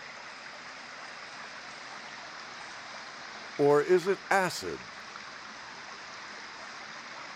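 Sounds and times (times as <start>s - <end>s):
speech: 3.6s - 4.9s
mountain stream flowing over rocks: 3.6s - 5.0s.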